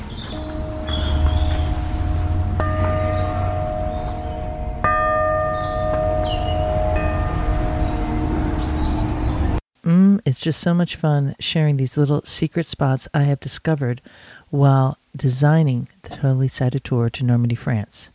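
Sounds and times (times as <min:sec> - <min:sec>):
birds chirping and tweeting outdoors: 0:00.0 - 0:09.6
church bell tolling: 0:00.0 - 0:09.6
lingering hum: 0:00.0 - 0:09.6
speech: 0:10.4 - 0:18.1.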